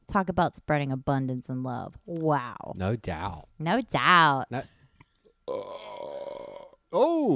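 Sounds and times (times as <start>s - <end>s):
speech: 0.1s - 4.8s, 5.5s - 5.9s, 6.9s - 7.3s
loud drawn-out burp: 5.4s - 7.2s.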